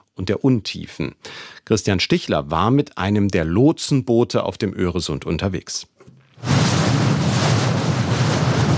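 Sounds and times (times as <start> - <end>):
speech: 0.2 - 6.8
rough sea waves churning and roaring: 6.4 - 8.7.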